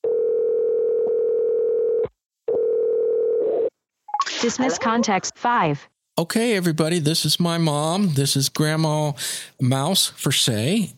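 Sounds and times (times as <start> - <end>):
electronic ringing tone of an outgoing iPhone call: 0.0 - 3.7
speech: 4.4 - 10.9.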